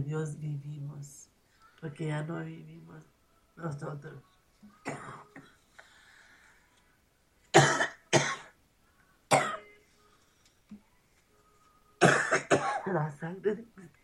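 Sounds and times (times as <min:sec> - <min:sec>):
speech: 0:00.0 - 0:05.5, 0:12.9 - 0:14.0
person coughing hoarsely: 0:07.5 - 0:08.5, 0:09.3 - 0:09.7, 0:12.0 - 0:13.0.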